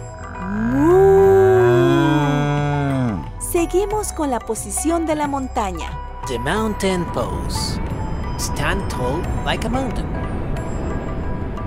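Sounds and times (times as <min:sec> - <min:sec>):
person imitating a cow's moo during the cow yoga pose: 0:00.0 - 0:03.4
speech: 0:03.6 - 0:07.8, 0:08.4 - 0:10.2.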